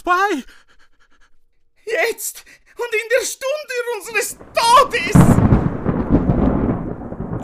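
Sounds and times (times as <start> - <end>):
speech: 0.0 - 0.6, 1.9 - 5.6
thunder rumbling: 4.3 - 7.4.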